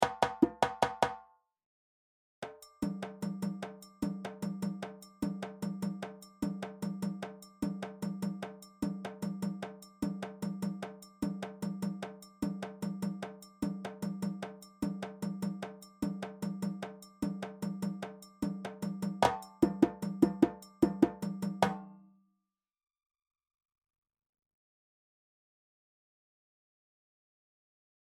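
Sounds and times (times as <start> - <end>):
kenkeni drum: 0.0 - 1.2, 2.8 - 22.0.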